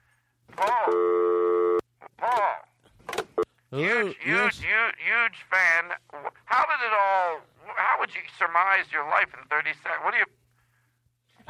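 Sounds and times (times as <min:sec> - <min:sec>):
speech: 0:00.6 - 0:01.3, 0:03.7 - 0:10.3
telephone line tone as a caller is put through on a call-in line: 0:00.8 - 0:01.8.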